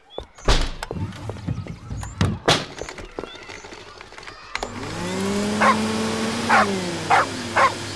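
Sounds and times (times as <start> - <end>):
vacuum cleaner humming while cleaning up spilled soil: 4.6 - 7.9
female dog barking at a vacuum cleaner: 5.6 - 7.8.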